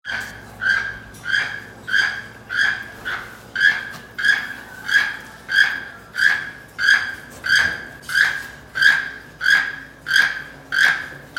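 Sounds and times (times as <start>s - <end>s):
keel-billed toucan: 0.1s - 11.3s.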